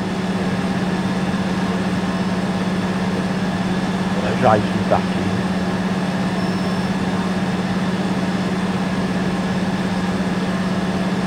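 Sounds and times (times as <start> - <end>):
engine drone: 0.0 - 11.2
speech: 4.4 - 5.2.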